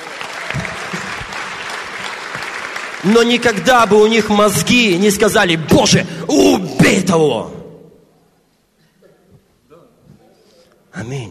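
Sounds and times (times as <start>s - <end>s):
audience applauding: 0.0s - 5.0s
speech: 3.0s - 7.6s.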